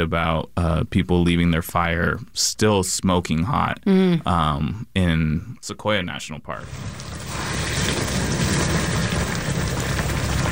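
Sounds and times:
speech: 0:00.0 - 0:08.2
water boiling: 0:06.6 - 0:10.5.

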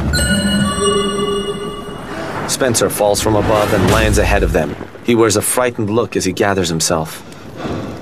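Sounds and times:
sustained ringing tones: 0:00.2 - 0:02.7
loud thunder crack after lightning: 0:02.2 - 0:06.2
speech: 0:02.6 - 0:07.7.

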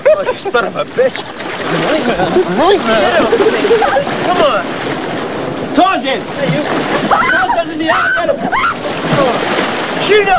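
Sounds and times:
water splashing as people plunge in: 0:00.0 - 0:10.3
speech: 0:00.2 - 0:05.0, 0:05.8 - 0:10.3
people shouting and laughing: 0:01.8 - 0:04.7, 0:06.7 - 0:09.5.

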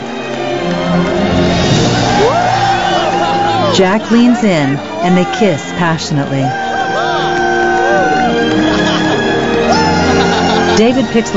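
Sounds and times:
large crowd cheering and shouting: 0:00.0 - 0:11.3
rising whoop: 0:02.0 - 0:03.8, 0:06.5 - 0:09.1, 0:09.7 - 0:10.8
laughter: 0:02.2 - 0:11.3
speech: 0:03.8 - 0:06.6, 0:08.3 - 0:08.7, 0:10.8 - 0:11.3.

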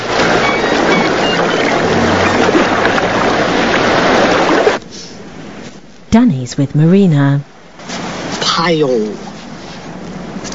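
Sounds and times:
shallow waves in a bay lapping over a rock: 0:00.0 - 0:04.8
speech: 0:06.1 - 0:07.5, 0:08.5 - 0:09.3.

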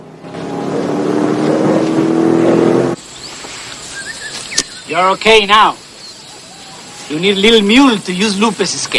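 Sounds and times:
truck engine roaring: 0:00.0 - 0:03.1
speech: 0:04.9 - 0:05.8, 0:07.1 - 0:08.9.

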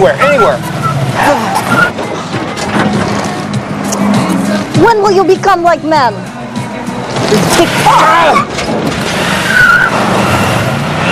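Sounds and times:
speech: 0:00.0 - 0:01.8, 0:04.9 - 0:06.3, 0:07.2 - 0:08.8
car tire squeals and skidding: 0:00.0 - 0:02.2, 0:07.4 - 0:11.1
car engine revving while driven roughly: 0:00.0 - 0:05.1, 0:06.5 - 0:11.1.

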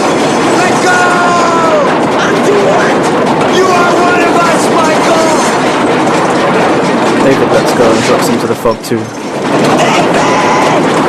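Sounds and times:
train rattling past over a bridge: 0:00.0 - 0:11.0
speech: 0:08.6 - 0:09.7.

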